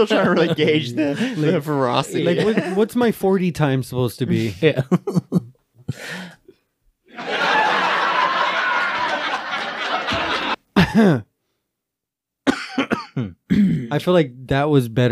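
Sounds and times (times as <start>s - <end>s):
laughter: 0.0s - 3.0s, 4.4s - 5.6s, 7.1s - 11.2s
speech: 0.0s - 6.4s, 11.0s - 11.3s, 13.9s - 15.1s
person coughing forcefully: 10.8s - 11.3s, 12.5s - 13.9s.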